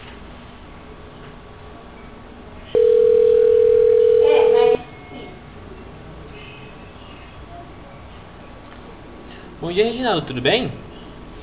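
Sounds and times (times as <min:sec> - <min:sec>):
telephone dial tone while placing a call: 0:02.8 - 0:04.8
speech: 0:09.7 - 0:10.8.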